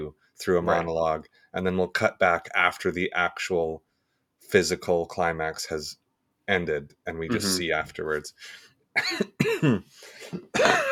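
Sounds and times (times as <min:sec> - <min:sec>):
speech: 0:00.1 - 0:10.9
person coughing: 0:07.3 - 0:07.6, 0:09.0 - 0:10.9
throat clearing: 0:09.0 - 0:10.9.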